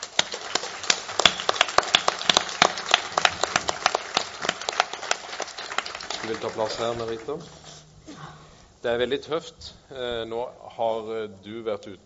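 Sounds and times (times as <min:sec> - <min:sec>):
audience applause: 0:00.0 - 0:07.8
speech: 0:06.3 - 0:07.6, 0:08.8 - 0:12.0.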